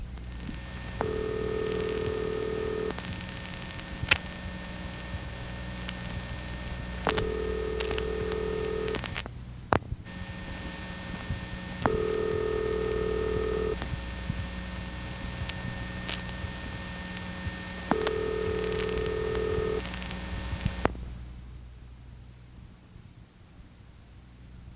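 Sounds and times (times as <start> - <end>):
faint telephone line crackle: 0.0 - 21.3
constant telephone line hum: 0.0 - 23.4
telephone ringing tones from cross-ringing interference on a telephone line: 1.0 - 3.0, 7.1 - 9.0, 11.9 - 13.8, 17.9 - 19.9.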